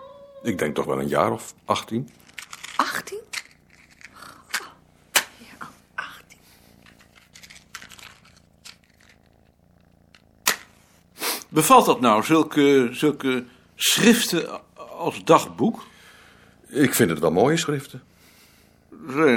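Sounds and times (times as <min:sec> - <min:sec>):
old cat about 18 years old purring: 0:00.0 - 0:19.3
speech: 0:00.4 - 0:02.3, 0:11.6 - 0:15.9, 0:16.7 - 0:18.1, 0:18.9 - 0:19.3
sharp clicks and rustling handling noises: 0:02.0 - 0:05.3, 0:06.2 - 0:10.7.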